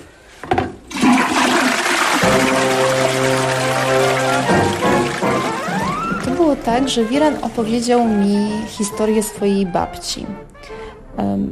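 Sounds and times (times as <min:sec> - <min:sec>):
toilet flushing: 0:00.7 - 0:08.2
speech: 0:06.7 - 0:11.5.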